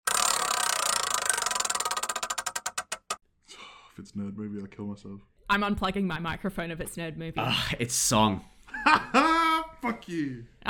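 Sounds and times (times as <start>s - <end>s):
prize wheel spinning and ticking: 0.0s - 3.2s
speech: 4.0s - 10.6s.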